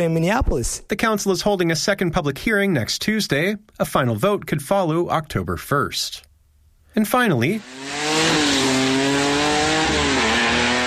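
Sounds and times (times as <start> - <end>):
speech: 0.0 - 6.3, 7.0 - 8.6
street-legal drag racing car engines roaring at a drag strip: 7.5 - 10.8.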